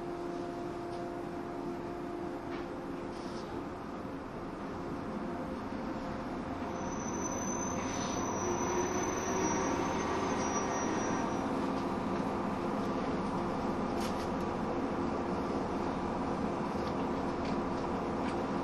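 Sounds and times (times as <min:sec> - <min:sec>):
103 series commuter train running on rails on a Bantan Line local service: 0:00.0 - 0:18.6
faint high squeals of train wheels: 0:06.6 - 0:11.6.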